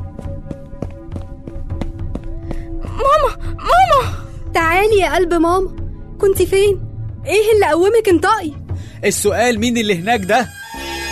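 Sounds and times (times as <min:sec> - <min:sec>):
quick footsteps approaching: 0:00.0 - 0:03.4
speech: 0:04.9 - 0:10.6.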